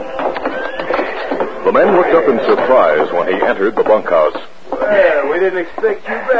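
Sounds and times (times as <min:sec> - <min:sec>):
clatter of hooves: 0:00.2 - 0:04.4
horse whinnying: 0:00.4 - 0:01.4
speech: 0:01.8 - 0:06.3.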